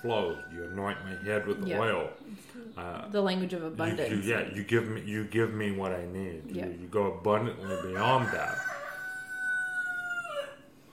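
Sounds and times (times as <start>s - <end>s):
rooster crowing: 0.0s - 2.0s, 7.6s - 10.8s
speech: 0.0s - 8.8s.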